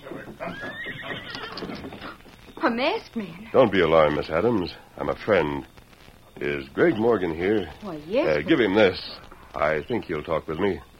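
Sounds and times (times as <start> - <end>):
voices: 0.0 - 2.3, 3.0 - 10.9
horse hoof clops: 0.0 - 2.6
horse neighing: 0.4 - 2.2
speech: 2.6 - 5.7, 6.4 - 10.9.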